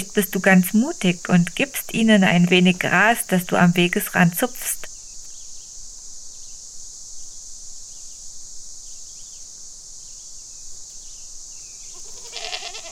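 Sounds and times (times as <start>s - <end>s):
speech: 0.0s - 4.8s
quiet outdoor hiss: 0.0s - 12.9s
goat bleating: 11.9s - 12.9s.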